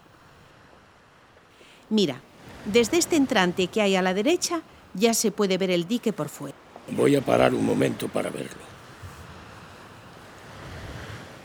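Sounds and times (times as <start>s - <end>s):
waves of the Cantabrian Sea rolling in: 0.0s - 11.4s
speech: 1.9s - 8.8s
gusting wind noise on the microphone: 8.7s - 11.4s.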